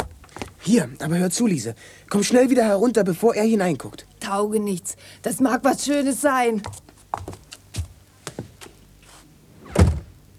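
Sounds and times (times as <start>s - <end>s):
speech: 0.7s - 6.9s
heavier thump: 9.6s - 10.2s
notebook thrown through a barely opened door onto a chair: 9.7s - 10.1s.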